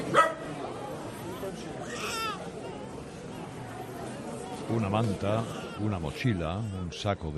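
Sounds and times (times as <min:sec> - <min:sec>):
murmur of people sheltering overnight in Kyiv metro station: 0:00.0 - 0:07.3
dog barking in Kyiv metro station: 0:00.1 - 0:00.5
speech: 0:04.7 - 0:07.3.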